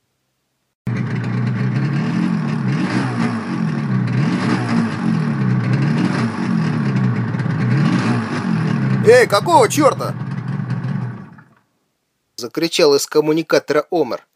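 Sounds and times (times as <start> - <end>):
powerful engine of a big blunt-nosed fuel tanker truck roaring: 0.9 - 11.6
speech: 9.1 - 10.2, 12.4 - 14.3.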